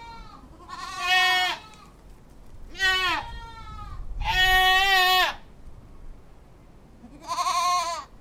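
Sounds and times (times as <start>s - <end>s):
goat bleating while wandering about with its kids: 0.0s - 2.0s, 2.7s - 5.5s, 7.0s - 8.1s.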